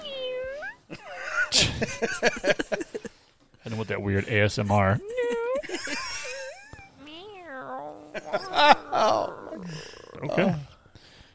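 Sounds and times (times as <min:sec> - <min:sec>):
cat meowing: 0:00.0 - 0:00.9, 0:06.7 - 0:10.6
laughter: 0:00.9 - 0:03.1, 0:04.9 - 0:07.0, 0:08.0 - 0:10.6
speech: 0:01.5 - 0:02.9, 0:03.7 - 0:05.3.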